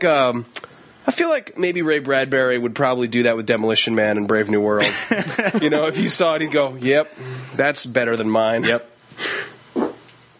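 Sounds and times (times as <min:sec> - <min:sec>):
speech: 0:00.0 - 0:09.5
laughter: 0:04.8 - 0:07.6
short soft low breathy fart: 0:09.8 - 0:10.0.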